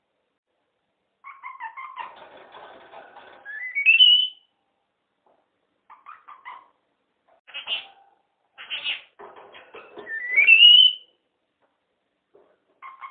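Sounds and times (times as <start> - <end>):
pet red-fronted parrot giving rising whistles: 3.5 - 4.5, 10.1 - 11.1.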